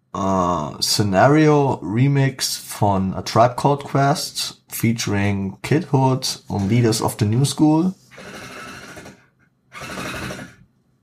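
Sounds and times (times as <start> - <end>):
speech: 0.2 - 8.4
power drill motor whirring loud and rattly: 8.1 - 10.6.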